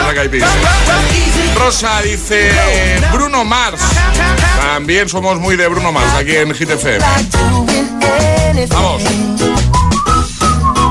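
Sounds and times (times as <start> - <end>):
loud upbeat music with a steady beat: 0.0 - 10.8
speech: 0.1 - 9.9
bright whistled melody of sustained high notes: 9.5 - 10.8.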